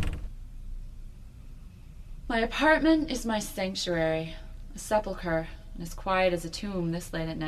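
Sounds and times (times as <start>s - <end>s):
apartment door pushed open: 0.0s - 0.3s
low steady room rumble: 0.0s - 7.4s
speech: 2.3s - 7.4s.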